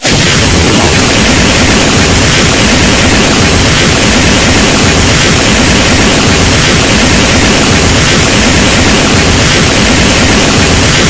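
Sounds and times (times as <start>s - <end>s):
rocket: 0.0s - 11.0s
weapons firing: 0.0s - 11.0s.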